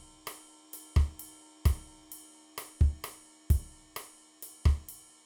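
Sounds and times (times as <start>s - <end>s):
salsa beat: 1.0s - 1.8s, 4.7s - 4.9s.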